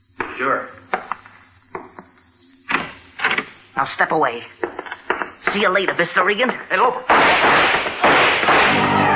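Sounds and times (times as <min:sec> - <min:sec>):
speech: 0:00.4 - 0:00.9, 0:03.8 - 0:04.6, 0:05.5 - 0:07.7
gunshots fired up a spiral staircase: 0:07.1 - 0:09.0.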